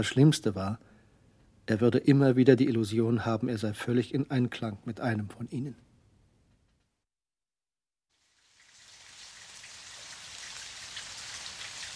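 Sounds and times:
speech: 0.0s - 0.9s, 1.7s - 5.8s
dense hissing downpour: 8.4s - 11.9s
steady rain: 8.4s - 11.9s.

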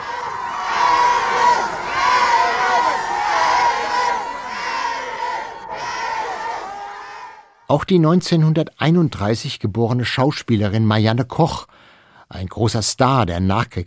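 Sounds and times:
dense crowd of excited fans screaming and cheering: 0.0s - 7.6s
speech: 7.7s - 13.8s.

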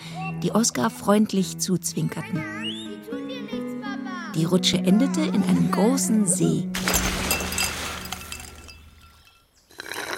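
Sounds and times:
speech: 0.4s - 2.8s, 4.4s - 6.9s
ice cubes clinking into a glass of lemonade: 6.8s - 9.4s.

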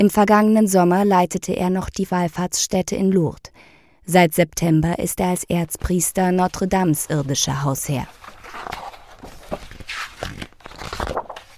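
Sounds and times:
speech: 0.0s - 8.8s
pages of a book being leafed through: 6.4s - 11.5s.

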